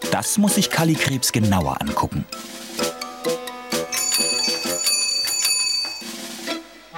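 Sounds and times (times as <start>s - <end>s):
speech: 0.1s - 2.6s
bicycle bell ringing: 3.9s - 6.2s.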